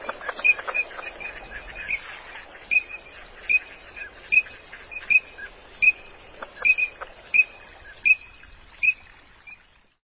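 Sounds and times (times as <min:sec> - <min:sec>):
Green-winged teal whistled peeps: 0:00.0 - 0:02.1, 0:02.7 - 0:09.6
faint background hiss: 0:00.0 - 0:10.0.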